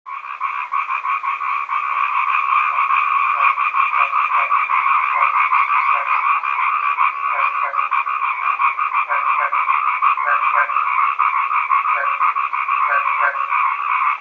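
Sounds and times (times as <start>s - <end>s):
East Asian bullfrog chorus croaking: 0.1s - 14.1s.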